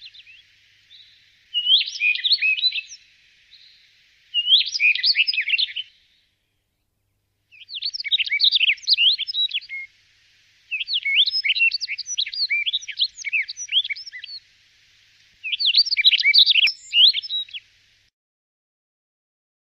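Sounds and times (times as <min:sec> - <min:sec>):
bird giving quick high twittering phrases of varied chirps: 0:00.0 - 0:06.2, 0:07.5 - 0:09.9, 0:10.7 - 0:14.4, 0:15.4 - 0:17.7.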